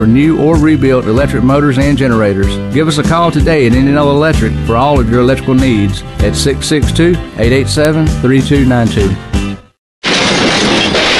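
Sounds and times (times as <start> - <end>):
speech: 0.0 - 9.4
car crash: 10.0 - 11.1
shattering and breaking glass debris: 10.0 - 11.1.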